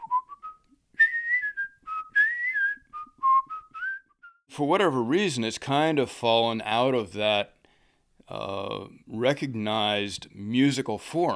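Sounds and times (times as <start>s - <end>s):
person whistling a bright jaunty melody: 0.0s - 4.4s
speech: 4.6s - 7.6s, 8.3s - 11.3s.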